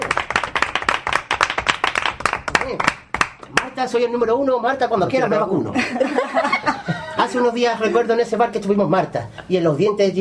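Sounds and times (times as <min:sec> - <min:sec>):
small crowd applauding: 0:00.0 - 0:03.8
speech: 0:02.7 - 0:10.1
laughter: 0:05.7 - 0:08.1.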